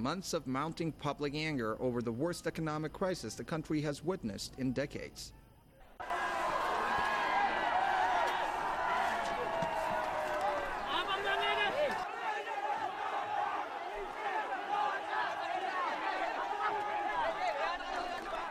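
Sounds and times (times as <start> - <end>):
speech: 0.0 - 5.4
hundreds of protesters shouting slogans against the president: 5.9 - 18.4.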